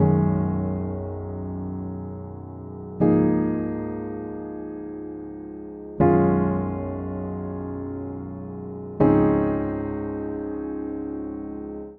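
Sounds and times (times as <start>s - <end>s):
upright piano chord progression in D flat major: 0.0s - 11.9s.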